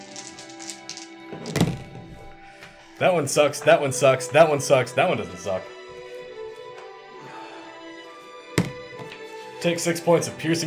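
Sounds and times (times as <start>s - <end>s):
twenty-sided die rolled on a table: 1.4s - 2.3s, 8.6s - 9.1s
speech: 3.0s - 5.7s, 9.6s - 10.6s.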